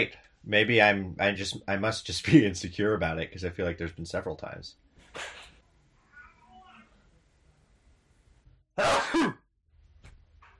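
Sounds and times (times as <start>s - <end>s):
speech: 0.0s - 5.4s, 8.8s - 9.4s
person sneezing: 8.8s - 9.4s.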